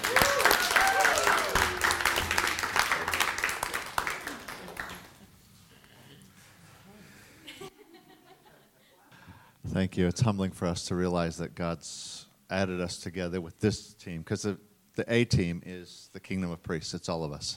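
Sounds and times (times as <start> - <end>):
audience applauding: 0.0 - 5.3
laughter: 7.4 - 8.9
speech: 9.8 - 17.5.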